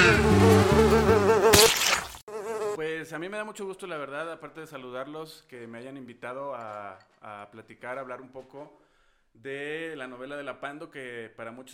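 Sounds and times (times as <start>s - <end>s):
housefly buzzing loudly: 0.0s - 2.8s
speech: 3.2s - 11.7s.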